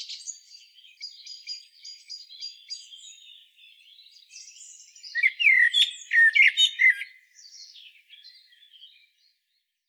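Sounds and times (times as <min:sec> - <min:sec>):
Eurasian blackbird Turdus merula ticking and chirping: 0:00.0 - 0:09.0.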